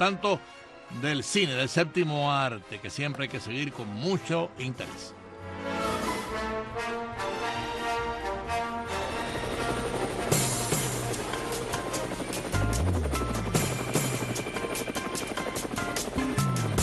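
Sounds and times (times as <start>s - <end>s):
speech: 0.0s - 5.8s
helicopter flying with loud rotor drone: 5.9s - 16.8s.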